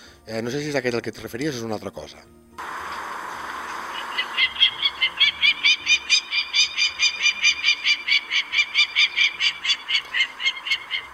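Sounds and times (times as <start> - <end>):
speech: 0.2 - 2.6
peregrine falcon territorial alarm call: 3.8 - 11.1.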